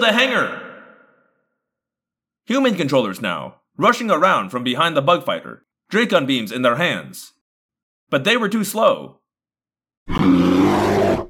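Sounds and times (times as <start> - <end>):
speech: 0.0 - 0.6, 2.5 - 7.4, 8.1 - 9.2
creature roaring gravelly: 10.1 - 11.2.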